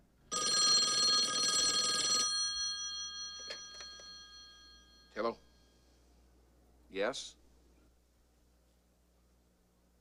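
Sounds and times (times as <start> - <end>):
telephone bell ringing: 0.3 - 5.7
speech: 7.0 - 7.4.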